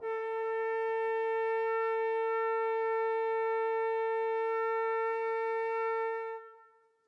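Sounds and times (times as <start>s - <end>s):
flute: 0.0s - 7.0s.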